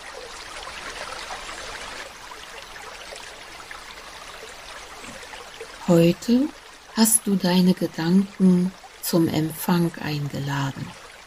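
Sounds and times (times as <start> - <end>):
fountain splashing water on a round square in an avenue lined with tall trees: 0.0 - 11.2
speech: 5.9 - 11.0.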